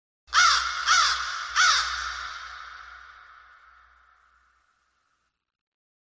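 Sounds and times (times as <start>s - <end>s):
crow cawing: 0.3s - 4.7s.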